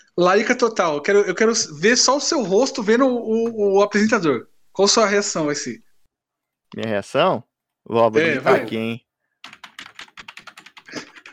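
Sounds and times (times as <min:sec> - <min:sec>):
speech: 0:00.1 - 0:05.9, 0:06.7 - 0:09.6
laughter: 0:08.2 - 0:08.8, 0:10.9 - 0:11.3
mechanical keyboard typing: 0:09.4 - 0:11.3.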